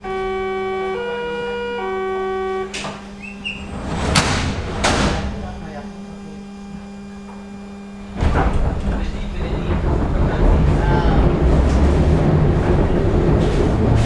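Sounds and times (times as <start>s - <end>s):
public transport in Berlin: 0.0s - 6.0s, 8.2s - 14.0s.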